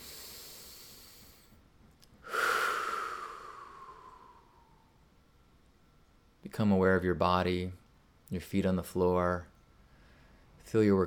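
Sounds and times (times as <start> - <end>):
deep breath: 0.0 - 1.6, 2.2 - 5.0, 9.8 - 10.6
speech: 6.6 - 9.5, 10.6 - 11.0.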